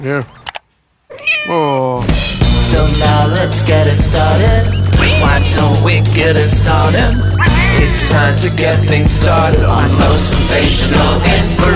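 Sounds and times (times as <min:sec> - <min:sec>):
speech: 0:00.0 - 0:00.4, 0:01.2 - 0:11.7
cat meowing: 0:01.1 - 0:01.8, 0:07.3 - 0:08.1.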